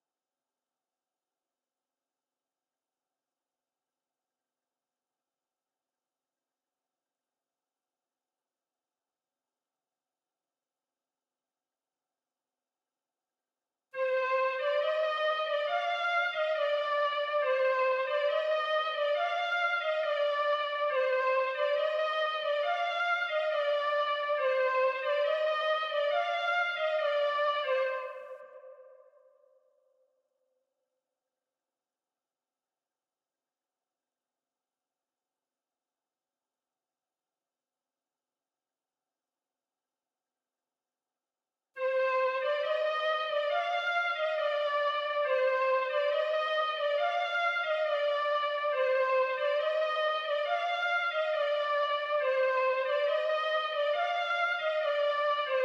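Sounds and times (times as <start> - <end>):
high flute melody loop in C minor for trap at 138 BPM: 14.0 - 28.6, 41.8 - 55.6.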